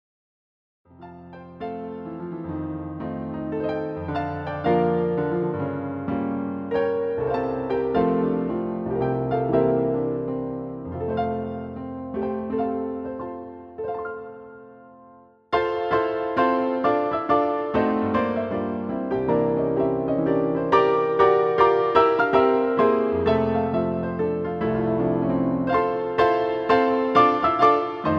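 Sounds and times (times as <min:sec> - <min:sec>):
piano roll: 0:00.9 - 0:28.1.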